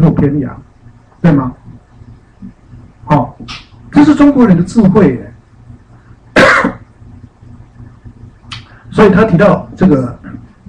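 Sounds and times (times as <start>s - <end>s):
low hum: 0.0s - 10.6s
speech: 0.2s - 1.8s, 2.4s - 5.3s, 9.0s - 10.2s
cough: 6.3s - 6.8s.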